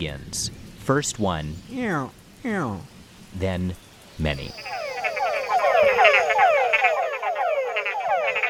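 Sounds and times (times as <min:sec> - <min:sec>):
speech: 0:00.0 - 0:04.8
male tungara frogs calling from forest pools at dusk: 0:04.4 - 0:08.4.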